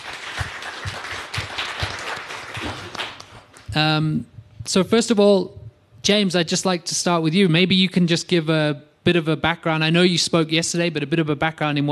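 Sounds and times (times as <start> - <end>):
crowd applauding: 0.0 - 3.8
speech: 3.8 - 11.9.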